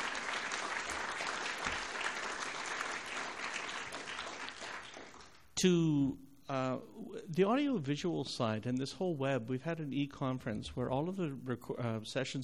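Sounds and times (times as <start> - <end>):
conference audience applause: 0.0 - 5.4
speech: 5.6 - 12.4.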